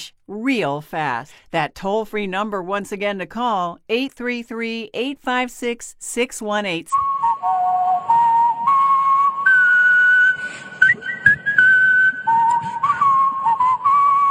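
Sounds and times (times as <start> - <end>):
speech: 0.0 - 7.8
person whistling a wavering tune: 6.9 - 14.2.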